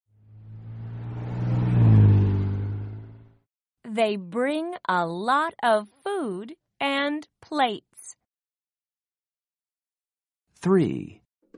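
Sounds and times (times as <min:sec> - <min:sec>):
truck engine revving: 0:00.1 - 0:03.4
speech: 0:04.0 - 0:07.9, 0:10.6 - 0:11.2.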